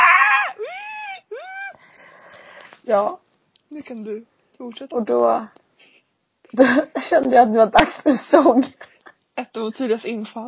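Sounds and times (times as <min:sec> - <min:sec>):
voice imitating people screaming: 0:00.0 - 0:01.8
speech: 0:02.9 - 0:10.4.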